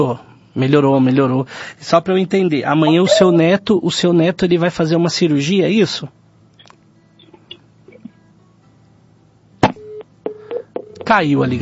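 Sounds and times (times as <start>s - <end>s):
speech: 0.0s - 6.2s, 11.1s - 11.5s
telephone line beeps after a dropped call: 3.0s - 3.4s, 9.8s - 11.2s.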